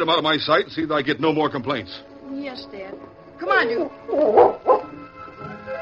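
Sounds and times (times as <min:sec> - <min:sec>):
speech: 0:00.0 - 0:04.8
dog growling and barking: 0:04.0 - 0:05.0.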